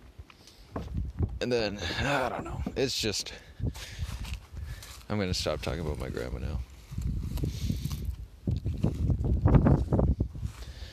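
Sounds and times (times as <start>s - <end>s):
knocks and thumps on a boat: 0.7s - 1.4s, 2.2s - 2.9s
gusty wind buffeting the microphone on a boat at a lake: 0.7s - 10.9s
speech: 1.4s - 4.0s, 5.1s - 6.7s.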